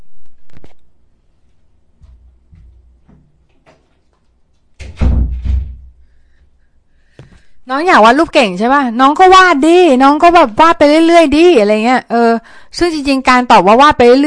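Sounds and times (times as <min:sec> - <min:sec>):
soft knocks: 0:02.0 - 0:04.1
door pushed shut with a heavy thud: 0:04.8 - 0:06.0
speech: 0:07.7 - 0:14.2.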